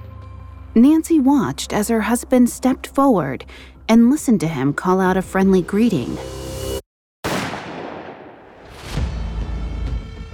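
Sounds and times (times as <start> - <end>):
speech: 0.8 - 6.4
gunshot: 7.2 - 9.3
duller rumbling echo of a gunshot: 7.3 - 9.0.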